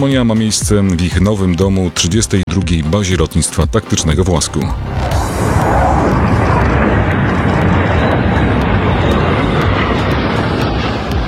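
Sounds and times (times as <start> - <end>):
speech: 0.0 - 5.3
F-35 multirole fighter jet roaring overhead on a welcome flight over Poland: 4.4 - 11.2.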